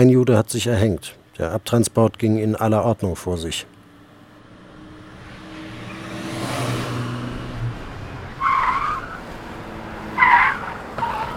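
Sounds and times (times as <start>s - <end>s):
speech: 0.0s - 3.7s
car engines droning on a busy street: 3.4s - 11.3s
car tires squealing: 4.4s - 11.3s.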